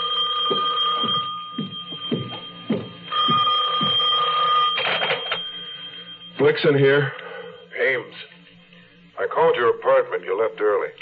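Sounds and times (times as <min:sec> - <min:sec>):
old-fashioned telephone bell ringing: 0:00.0 - 0:07.8
soft low thumps: 0:00.4 - 0:04.1
speech: 0:00.5 - 0:00.7, 0:06.4 - 0:07.2, 0:07.9 - 0:08.3, 0:09.4 - 0:10.9.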